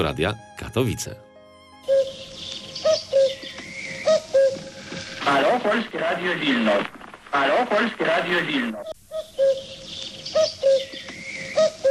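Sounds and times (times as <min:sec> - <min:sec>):
speech: 0:00.0 - 0:01.3, 0:05.3 - 0:08.9
cuckoo calling its two-note hoot: 0:01.7 - 0:05.5, 0:08.3 - 0:11.8
faint chirping: 0:01.8 - 0:05.3, 0:08.6 - 0:11.8.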